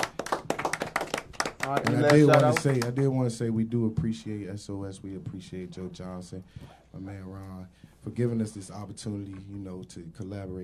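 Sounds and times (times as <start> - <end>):
small group clapping hands: 0.0 - 3.2
speech: 1.6 - 10.6.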